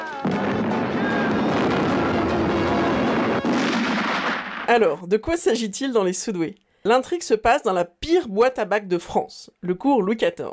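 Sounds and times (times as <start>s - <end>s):
homemade powder charge explosion blast: 0.2s - 4.7s
speech: 4.7s - 10.5s.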